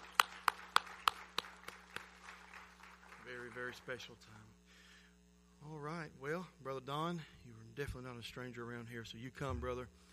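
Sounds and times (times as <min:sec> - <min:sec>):
audience applause at a church service: 0:00.0 - 0:04.1
speech: 0:03.6 - 0:04.6, 0:05.6 - 0:10.0.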